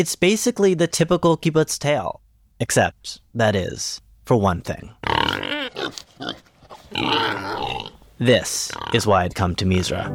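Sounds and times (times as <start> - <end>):
speech: 0.0 - 5.2, 6.2 - 10.1
several pigs grunting and squealing: 5.0 - 9.3.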